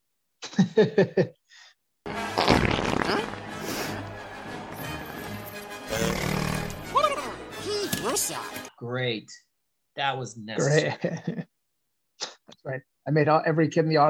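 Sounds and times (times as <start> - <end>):
speech: 0.6 - 1.4, 8.1 - 11.4, 12.6 - 14.0
sputtering fart blasts: 2.3 - 3.4, 5.9 - 6.8
animal-like growls: 5.9 - 6.8.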